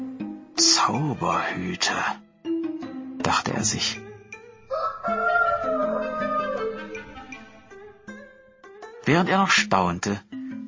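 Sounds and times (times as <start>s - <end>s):
speech: 0.6s - 2.2s, 3.3s - 4.0s, 9.1s - 10.3s
rooster crowing in a village at sunrise: 4.7s - 7.6s.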